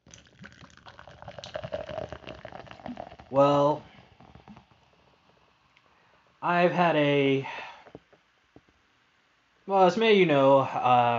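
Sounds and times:
pomegranate kombucha pouring into a glass: 0.0s - 6.0s
speech: 2.9s - 3.9s, 6.4s - 7.6s, 9.7s - 11.1s.

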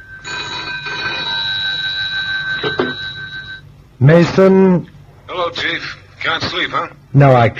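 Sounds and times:
telephone ringing with an electric bell tone by the bedside: 0.0s - 3.7s
speech: 4.0s - 7.5s.

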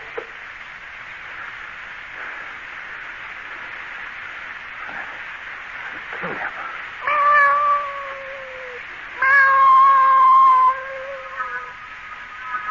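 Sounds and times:
cat yowling in long wavering cries: 7.0s - 11.8s.

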